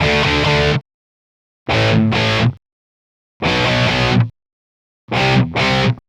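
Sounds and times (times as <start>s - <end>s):
electric pop rock guitar playing eighth notes in D major: 0.0s - 0.8s, 1.7s - 2.6s, 3.4s - 4.3s, 5.1s - 6.0s.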